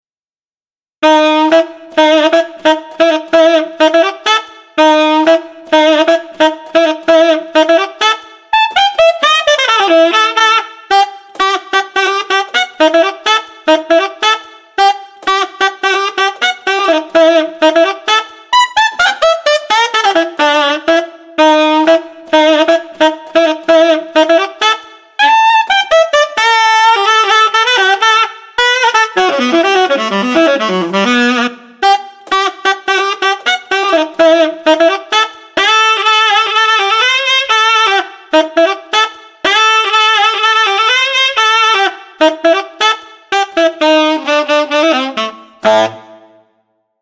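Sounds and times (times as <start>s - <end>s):
street alto saxophone playing: 1.0s - 46.7s.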